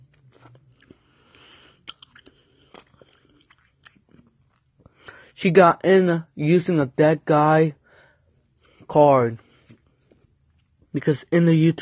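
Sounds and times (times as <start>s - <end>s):
wet chewing with crunchy bites: 0.0s - 4.9s
speech: 5.4s - 7.8s, 8.9s - 9.4s, 10.9s - 11.7s.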